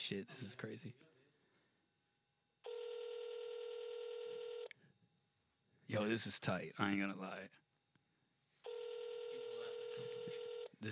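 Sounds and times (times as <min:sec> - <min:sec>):
speech: 0:00.1 - 0:01.1, 0:05.9 - 0:07.6, 0:10.0 - 0:10.8
ringback tones from an outgoing phone call: 0:02.6 - 0:04.7, 0:08.6 - 0:10.7.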